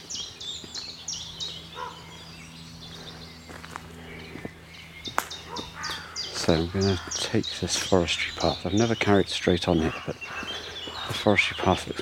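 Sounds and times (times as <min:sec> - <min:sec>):
low steady hum: 0:00.0 - 0:12.0
harsh croaks and caws from ravens and a carrion crow: 0:01.1 - 0:11.8
scuffing footsteps: 0:02.8 - 0:07.9, 0:10.3 - 0:11.3
speech: 0:06.5 - 0:10.5, 0:11.1 - 0:12.0.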